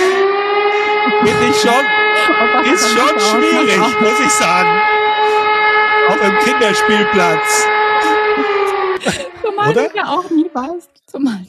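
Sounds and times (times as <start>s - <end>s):
siren: 0.0s - 10.6s
laughter: 0.0s - 10.8s
speech: 1.2s - 5.4s, 6.1s - 11.4s.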